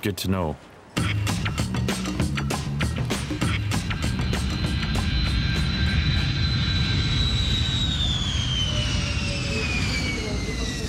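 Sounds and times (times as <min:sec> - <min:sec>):
speech: 0:00.0 - 0:00.7
airplane jet engine roar in the cabin during flight: 0:01.3 - 0:10.8
high whine descending in pitch: 0:03.0 - 0:10.8.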